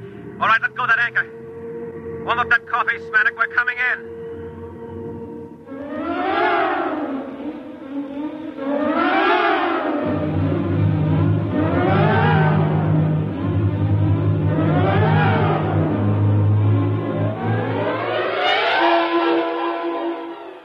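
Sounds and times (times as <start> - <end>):
speech: 2.3 - 4.2
vehicle engine running and revving: 4.1 - 20.2.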